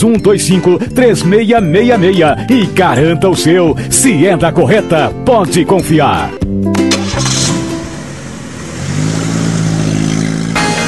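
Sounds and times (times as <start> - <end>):
speech: 0.0 - 6.9
car engine revving and accelerating: 6.7 - 10.8.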